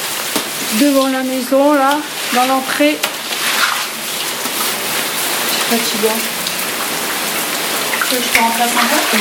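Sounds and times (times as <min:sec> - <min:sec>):
heavy rain during a thunderstorm: 0:00.0 - 0:09.1
speech: 0:00.7 - 0:03.1, 0:05.7 - 0:06.3, 0:08.1 - 0:09.1.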